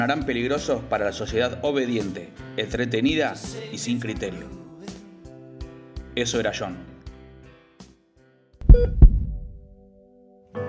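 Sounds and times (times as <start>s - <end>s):
speech: 0.0s - 4.6s, 6.2s - 6.9s, 8.7s - 9.0s
heartbeat sound effect with deep booming lub-dub thumps: 8.6s - 9.8s.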